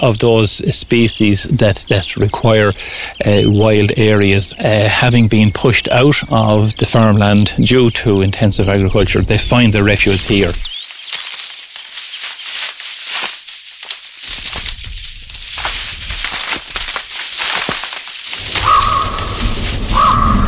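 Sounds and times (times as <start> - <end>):
speech: 0.0 - 10.7
ravens croaking deeply: 0.0 - 12.0, 14.1 - 20.4
rough crackling noise outdoors: 8.4 - 20.4
loud rushing wind outdoors: 18.4 - 20.4.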